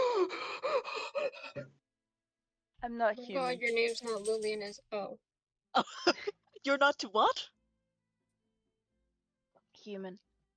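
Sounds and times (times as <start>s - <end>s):
several voices gasping dramatically: 0.0s - 1.6s
speech: 2.8s - 7.6s, 9.8s - 10.2s.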